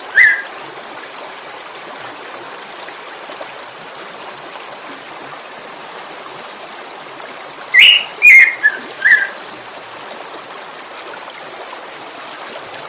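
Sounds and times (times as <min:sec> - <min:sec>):
black-throated grosbeak whistling: 0:00.1 - 0:00.5, 0:07.8 - 0:09.4.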